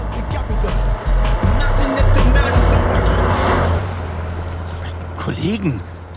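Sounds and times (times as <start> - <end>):
loud hip-hop music booming from inside a car: 0.0 - 3.8
yellow Daihatsu car engine and road noise: 0.0 - 6.1
speech: 5.4 - 5.9.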